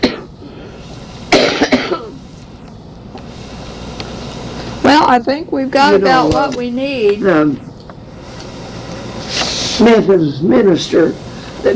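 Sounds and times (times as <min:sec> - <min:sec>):
person coughing: 0:00.0 - 0:00.3, 0:01.3 - 0:02.2
speech: 0:05.1 - 0:07.7, 0:09.8 - 0:11.7.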